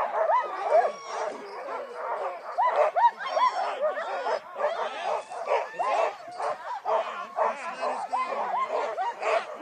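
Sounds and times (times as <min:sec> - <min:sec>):
sled dogs barking and yipping: 0:00.0 - 0:09.6
sled dogs whining excitedly: 0:00.1 - 0:06.5.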